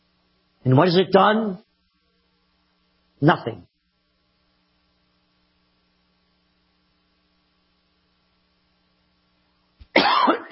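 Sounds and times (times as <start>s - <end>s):
speech: 0.6s - 1.6s, 3.2s - 3.7s
person coughing with something stuck in throat: 9.8s - 10.4s
throat clearing: 9.8s - 10.4s.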